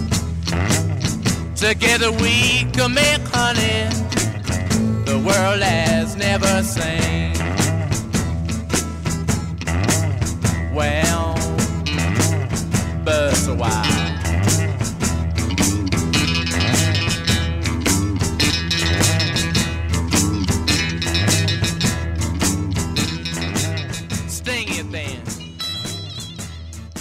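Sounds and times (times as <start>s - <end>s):
blues rock song cover: 0.0s - 26.9s
twangy guitar lines: 0.0s - 26.9s
speech: 1.6s - 4.4s, 5.2s - 7.7s, 10.8s - 11.3s
person singing a melody: 1.6s - 7.8s, 10.7s - 12.2s, 12.9s - 14.8s.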